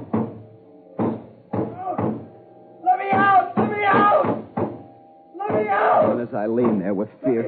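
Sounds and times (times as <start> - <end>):
heavy bangs on a door: 0.0 - 0.4, 1.0 - 2.3, 3.1 - 6.9
speech: 6.2 - 7.4.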